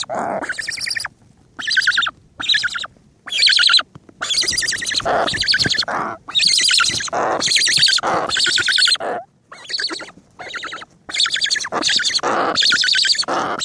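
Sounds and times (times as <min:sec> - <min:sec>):
Cory's shearwater chicks giving harsh nasal buzzy calls: 0:00.0 - 0:13.6.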